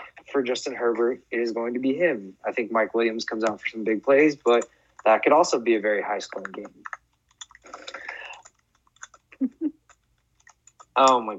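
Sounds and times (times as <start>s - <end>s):
speech: 0.4s - 7.0s, 11.0s - 11.3s
typing on a keyboard: 6.3s - 11.3s.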